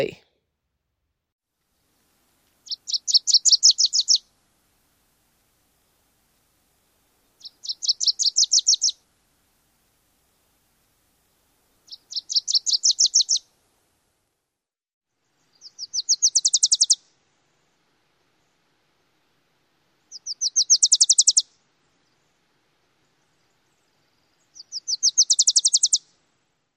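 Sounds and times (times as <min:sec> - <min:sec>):
speech: 0:00.0 - 0:00.2
Wilson's Warbler singing: 0:02.6 - 0:04.3, 0:07.2 - 0:09.0, 0:11.7 - 0:13.4, 0:15.3 - 0:17.0, 0:20.1 - 0:22.3, 0:23.0 - 0:26.0.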